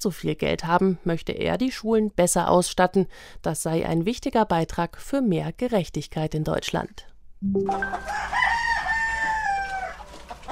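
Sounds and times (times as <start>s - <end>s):
speech: 0.0s - 8.6s
rooster crowing: 7.8s - 10.4s.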